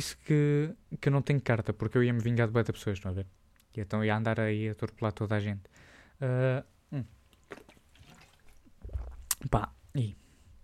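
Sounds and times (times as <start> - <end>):
speech: 0.0 - 7.6, 9.4 - 10.2
person sipping water: 7.1 - 9.5
swallowing: 7.1 - 9.5.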